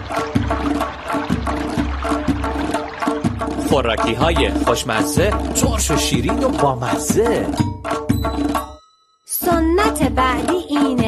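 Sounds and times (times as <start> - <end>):
water rushing and gurgling as knotted greens are released: 0.0 - 7.7
speech: 3.8 - 8.6, 9.6 - 11.0.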